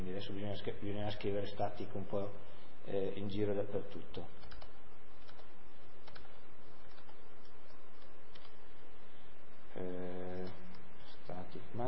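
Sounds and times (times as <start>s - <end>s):
speech: 0.0s - 4.6s, 9.8s - 10.1s, 11.5s - 11.8s
code being typed on a computer keyboard: 4.4s - 7.3s, 7.9s - 8.6s.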